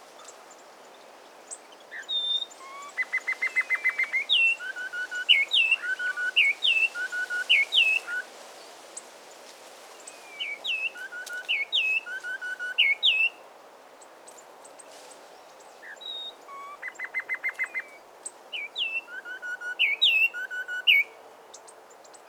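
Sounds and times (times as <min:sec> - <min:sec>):
Peruvian wren song: 0:01.5 - 0:08.3, 0:10.0 - 0:13.4, 0:15.8 - 0:21.1.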